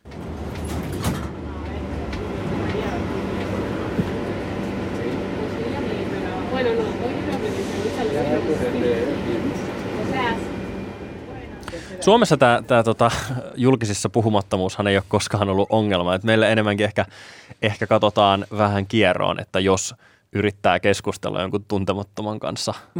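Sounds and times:
metro train rumbling in Barcelona: 0.0 - 13.3
passengers chattering in a Barcelona metro train carriage: 1.3 - 13.1
speech: 11.9 - 22.9.

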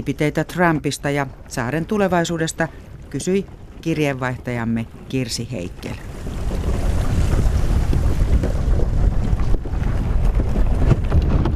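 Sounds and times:
speech: 0.0 - 6.1
wind buffeting: 0.0 - 11.5
small motorboat engine roar on the sea in the Ilulissat Icefjord, Greenland: 2.7 - 11.5.

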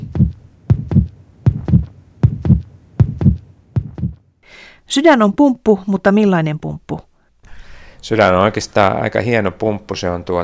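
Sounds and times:
human heartbeat thumping: 0.0 - 4.2
speech: 4.9 - 7.1, 8.0 - 10.4.

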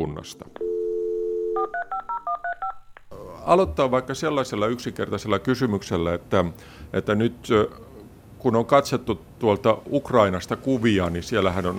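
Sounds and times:
speech: 0.0 - 0.6, 3.4 - 7.8, 8.4 - 11.7
telephone dial tone: 0.6 - 2.8.

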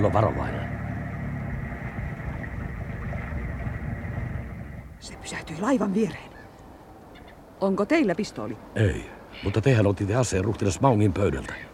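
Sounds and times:
speech: 0.0 - 0.6, 5.3 - 6.3, 7.6 - 11.7
motorboat engine idling: 0.0 - 5.1.

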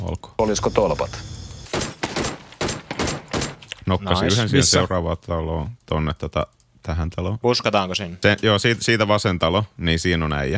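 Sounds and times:
speech: 0.0 - 1.3, 3.9 - 10.5
video game gunfire at a metal target: 1.7 - 3.7.

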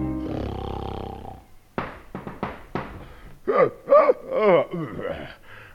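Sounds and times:
man snoring with a long rumbling breath: 0.2 - 1.5
man's short snorts and throaty grunts: 0.3 - 1.5, 3.5 - 5.4.

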